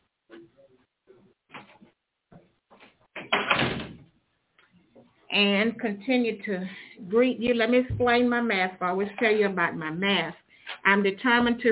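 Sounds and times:
door being pushed shut: 3.2 - 4.1
speech: 5.4 - 11.7.

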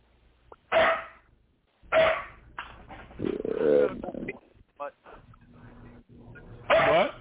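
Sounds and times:
older female dog barking: 0.7 - 1.3, 1.9 - 2.4, 6.7 - 7.1
older female dog making rough, uneven vocal sounds: 3.1 - 4.4.

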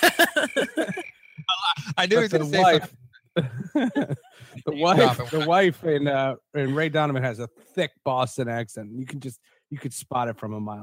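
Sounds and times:
cricket chirping: 0.0 - 4.2
laughter: 0.0 - 5.7
speech: 2.0 - 10.8.

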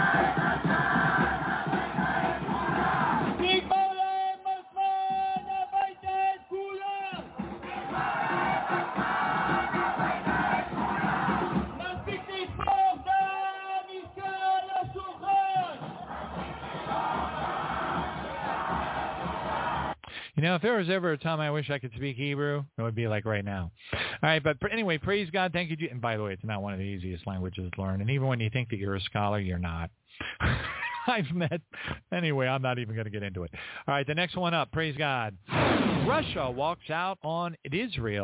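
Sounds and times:
large crowd of protesters roaring and chanting: 0.0 - 3.7, 5.6 - 13.3, 14.0 - 20.0
shouting voices: 0.0 - 3.7, 6.6 - 20.0
loud rhythmic yelling: 0.0 - 20.0
speech: 20.4 - 30.0, 31.1 - 38.2.

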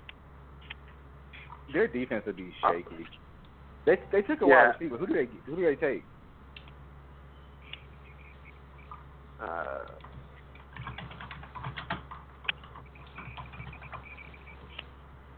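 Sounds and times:
speech: 1.7 - 6.1
typing on a computer keyboard: 10.0 - 14.4.

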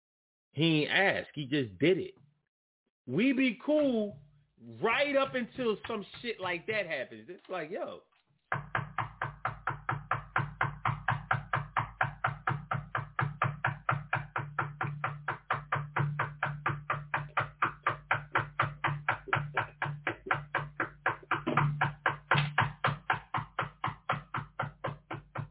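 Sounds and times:
speech: 0.6 - 2.2, 3.1 - 8.6
neighbour knocking on a door: 8.5 - 25.4.

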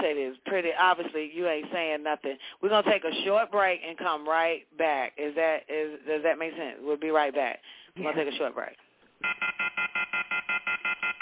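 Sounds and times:
speech: 0.1 - 11.2
off-the-hook telephone tone from a handset left unhung: 9.2 - 11.2.

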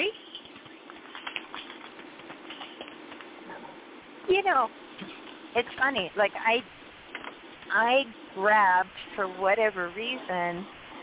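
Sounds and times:
deck of oracle cards being shuffled: 0.4 - 3.3
speech: 4.3 - 6.8, 7.7 - 10.8.

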